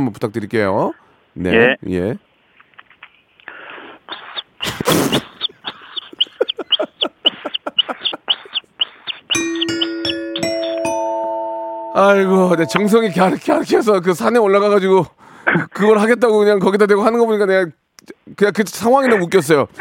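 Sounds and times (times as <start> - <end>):
speech: 0.0 - 2.3, 12.0 - 15.2, 15.8 - 19.8
voice imitating a baby bird with high short chirps: 4.1 - 9.8
bright ding-dong chime: 9.4 - 13.6.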